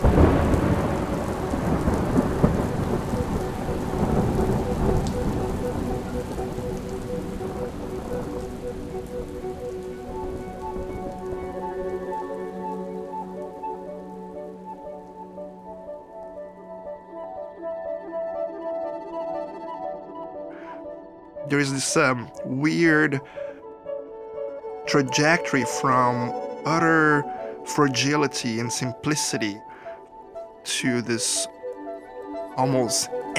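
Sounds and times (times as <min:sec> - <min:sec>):
deep rolling thunder at a concert venue: 0:00.0 - 0:11.4
heavy rain of a thunderstorm at a concert venue: 0:00.0 - 0:16.9, 0:21.5 - 0:23.7, 0:24.6 - 0:33.3
sustained steady musical tones: 0:00.0 - 0:33.3
speech: 0:21.5 - 0:23.4, 0:24.9 - 0:29.7, 0:30.6 - 0:31.6, 0:32.6 - 0:33.2.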